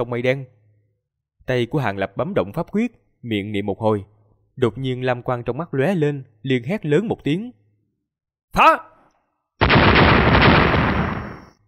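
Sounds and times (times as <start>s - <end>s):
speech: 0.0s - 0.6s, 1.5s - 7.6s, 8.5s - 8.9s
barrage of dozens of explosions: 9.6s - 11.6s.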